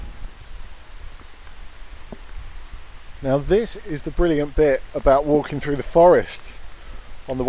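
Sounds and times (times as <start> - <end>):
steady rain falling outdoors: 0.0 - 7.4
faint scattered taps: 1.2 - 2.4
speech: 3.2 - 6.6, 7.3 - 7.4.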